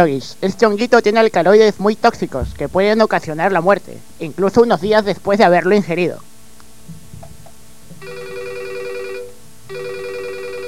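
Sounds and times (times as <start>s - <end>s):
speech: 0.0s - 6.3s
faint low knocks: 2.2s - 3.5s, 6.8s - 8.1s
telephone ringing with an incoming call: 8.0s - 10.6s.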